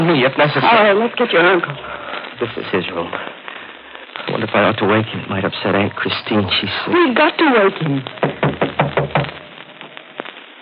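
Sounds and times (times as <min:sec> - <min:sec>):
speech: 0:00.1 - 0:03.4, 0:04.3 - 0:09.3
knocking on a wooden bedroom door: 0:08.2 - 0:09.3.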